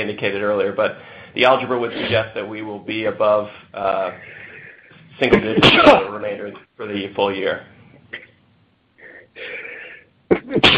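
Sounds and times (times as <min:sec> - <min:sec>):
speech: 0:00.0 - 0:04.4, 0:05.2 - 0:07.7
person sneezing: 0:05.4 - 0:06.1, 0:09.0 - 0:10.7.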